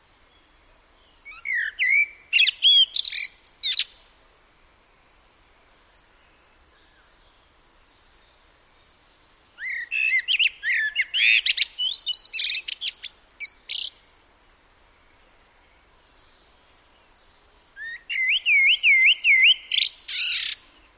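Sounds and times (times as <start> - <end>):
common blackbird singing fluty warbled phrases: 1.0 - 4.1, 9.6 - 14.2, 15.7 - 20.9.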